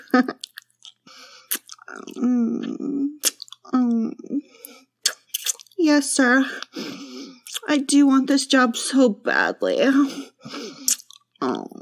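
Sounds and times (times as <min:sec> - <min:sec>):
speech: 0:00.1 - 0:00.5, 0:05.9 - 0:06.6, 0:07.7 - 0:10.6
wet slurping and licking mouth sounds: 0:00.4 - 0:02.3, 0:03.2 - 0:03.7, 0:04.6 - 0:05.8, 0:07.4 - 0:07.7, 0:10.8 - 0:11.3.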